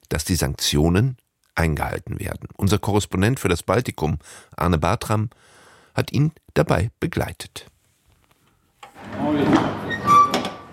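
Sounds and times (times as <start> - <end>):
speech: 0.1 - 7.7, 9.0 - 9.8
heavy metal cargo hold door of a truck sliding open at a customs check: 8.9 - 10.7.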